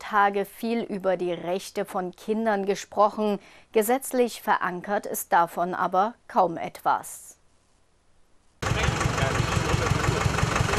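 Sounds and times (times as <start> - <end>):
speech: 0.1 - 7.3
decorated tractor engines idling on a fairground: 8.6 - 10.7.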